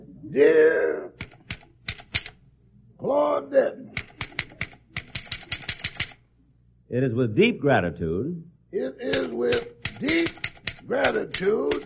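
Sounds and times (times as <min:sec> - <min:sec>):
speech: 0:00.3 - 0:01.2, 0:03.0 - 0:04.0, 0:06.9 - 0:11.8
typewriter keystrokes typing a dictated letter at a house in Beverly Hills: 0:01.2 - 0:02.4, 0:04.0 - 0:06.2, 0:09.1 - 0:11.8
voice dictating a letter: 0:08.8 - 0:11.8.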